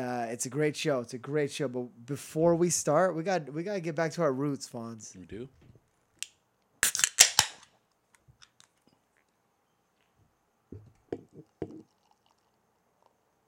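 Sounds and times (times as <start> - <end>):
speech: 0.0 - 5.6
beer can popping open with a crack and fizzy hiss: 6.2 - 8.8
sharp click of a beer can: 6.8 - 7.7
beer pouring into a cup: 11.1 - 13.2.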